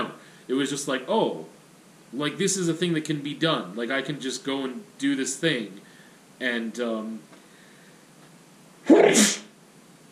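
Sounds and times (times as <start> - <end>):
speech: 0.5 - 7.4
person sneezing: 8.9 - 9.5.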